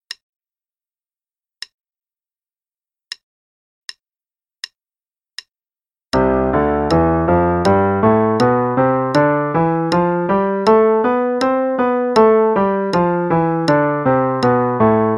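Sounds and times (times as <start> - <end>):
piano playing a C major scale in eighth notes: 6.2 - 15.1.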